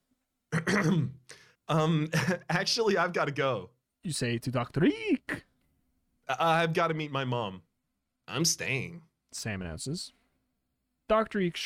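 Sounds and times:
rough voiced throat clearing: 0.5s - 1.5s
speech: 0.7s - 5.4s, 6.3s - 7.7s, 8.3s - 10.2s, 11.1s - 11.6s.

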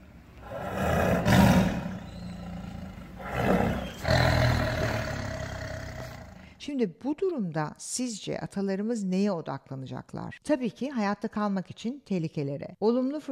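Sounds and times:
saber-toothed tiger roaring in deep rumbling growls: 0.4s - 6.5s
speech: 6.6s - 13.3s.

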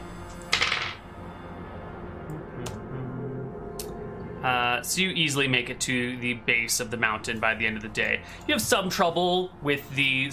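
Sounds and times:
low room hum: 0.0s - 10.3s
dice rolled for a tabletop game clattering across a tabletop: 0.5s - 1.0s
speech: 4.4s - 10.3s.

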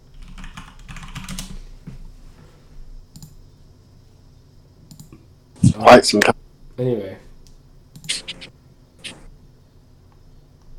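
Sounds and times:
typing on a computer keyboard: 0.1s - 1.6s, 7.9s - 9.3s
speech: 5.8s - 7.2s.

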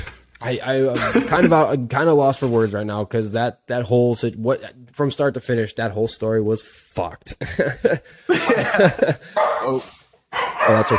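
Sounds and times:
speech: 0.4s - 10.0s, 10.7s - 10.9s
laughter: 0.9s - 1.7s, 7.3s - 9.4s
dog barking and yipping: 9.4s - 10.9s.

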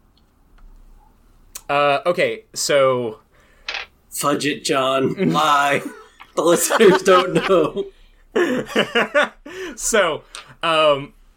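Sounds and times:
faint hum: 0.0s - 11.3s
speech: 1.7s - 3.2s, 4.2s - 11.2s
dice tumbling across a tabletop: 3.7s - 3.9s
laughter: 5.0s - 9.6s.

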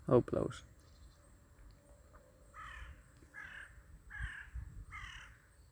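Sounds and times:
speech: 0.1s - 0.7s
crow cawing harshly: 2.5s - 5.4s.

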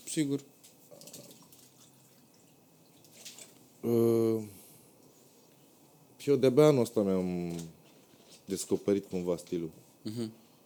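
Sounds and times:
speech: 0.2s - 0.6s, 3.8s - 4.6s, 6.3s - 7.8s, 8.5s - 10.4s
dripping splashes of water: 0.6s - 3.7s.

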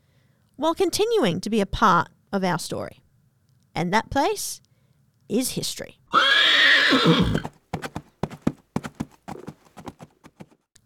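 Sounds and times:
speech: 0.6s - 3.0s, 3.8s - 4.6s, 5.3s - 7.6s
wild Australian brumby horse whinnying: 6.1s - 7.5s
brumby horse hooves clopping: 6.2s - 10.7s.

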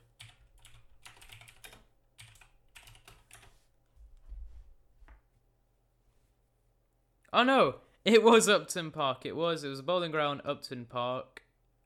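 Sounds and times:
typing on a computer keyboard: 0.0s - 3.6s
speech: 7.3s - 11.4s.

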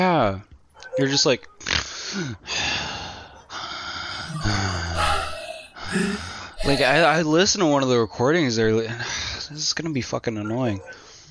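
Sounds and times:
speech: 0.0s - 2.8s, 4.4s - 5.0s, 5.9s - 11.0s
voice imitating heavy breathing with gasps and snorts: 2.5s - 7.4s.

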